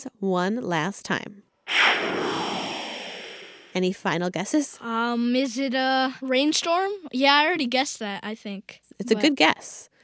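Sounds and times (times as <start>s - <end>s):
speech: 0.0s - 2.1s, 3.8s - 9.9s
broadcast-style whoosh sting: 1.7s - 3.9s.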